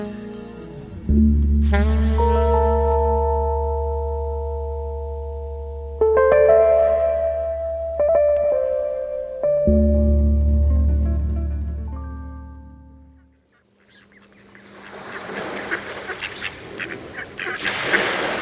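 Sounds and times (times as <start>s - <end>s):
low humming tone: 0.7s - 14.6s
migrating mallard ducks quacking in a coastal front yard on Long Island Sound: 13.1s - 18.3s.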